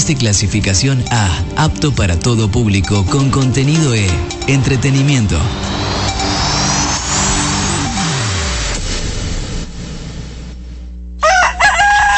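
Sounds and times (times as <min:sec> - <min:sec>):
speech: 0:00.1 - 0:05.9
vehicle engine revving and winding down: 0:04.2 - 0:10.8
rooster crowing: 0:11.2 - 0:12.1.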